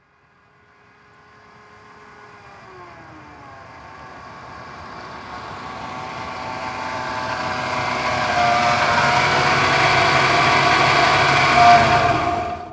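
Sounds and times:
Ford Ranger truck driving up slowly and shutting off: 2.8s - 12.7s.

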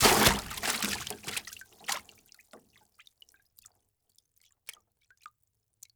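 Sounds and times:
water splashing in plastic tub: 0.0s - 2.2s.

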